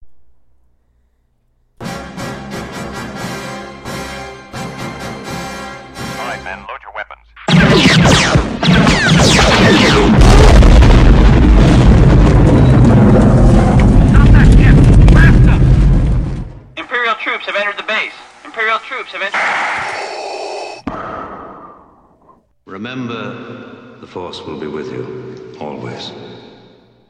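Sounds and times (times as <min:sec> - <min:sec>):
blast: 0:07.5 - 0:16.7, 0:19.3 - 0:22.0.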